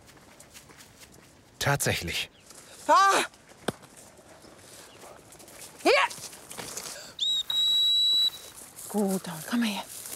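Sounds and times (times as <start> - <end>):
speech: 1.7 - 3.4, 5.8 - 6.3, 8.9 - 9.9
high pure dog whistle recalling a hunting dog: 7.2 - 8.4.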